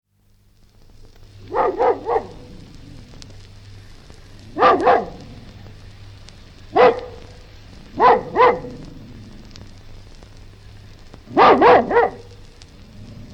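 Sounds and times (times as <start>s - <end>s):
steady low background hum: 0.1s - 13.3s
collie barking: 1.4s - 2.6s, 4.6s - 5.3s, 6.7s - 7.4s, 8.0s - 8.9s, 11.3s - 12.3s.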